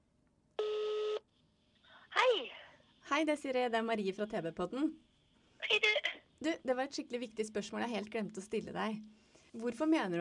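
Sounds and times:
steady electronic phone tone: 0.6s - 1.2s
speech: 3.1s - 10.1s.

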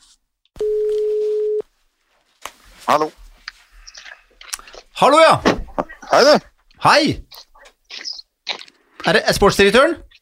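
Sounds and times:
telephone ringing tone while placing a call: 0.6s - 1.6s
speech: 2.9s - 3.2s, 5.0s - 7.3s, 9.0s - 10.1s.

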